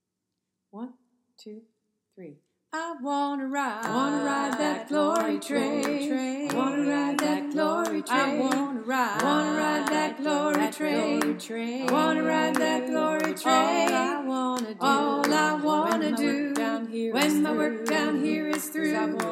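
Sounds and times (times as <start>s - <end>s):
choir singing in all parts: 3.6s - 19.2s
hand claps: 3.8s - 19.2s.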